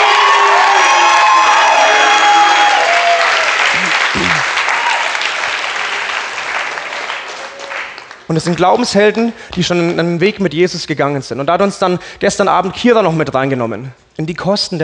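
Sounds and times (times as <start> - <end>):
crowd cheers, whoops and high shouts: 0.0 - 5.9
loud crowd applauding: 0.0 - 8.7
speech: 8.3 - 14.8.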